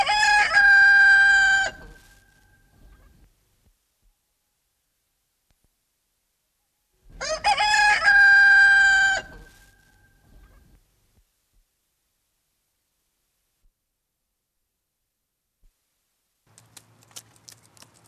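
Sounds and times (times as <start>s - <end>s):
rooster crowing: 0.0s - 2.1s, 7.2s - 9.8s.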